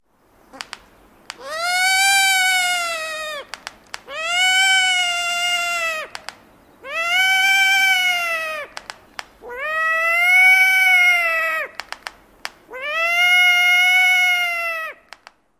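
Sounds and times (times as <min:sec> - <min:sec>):
long-eared owl bill snaps: 0:00.5 - 0:04.7, 0:05.7 - 0:06.6, 0:07.7 - 0:09.5, 0:11.5 - 0:12.8, 0:15.0 - 0:15.4
long-eared owl squeals near nest: 0:00.5 - 0:12.1, 0:12.7 - 0:15.2.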